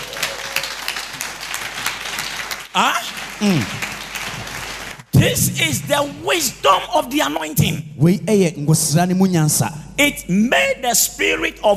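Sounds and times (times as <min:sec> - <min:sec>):
audience clapping during a church sermon: 0:00.0 - 0:05.4
speech: 0:02.8 - 0:03.8, 0:05.2 - 0:11.7.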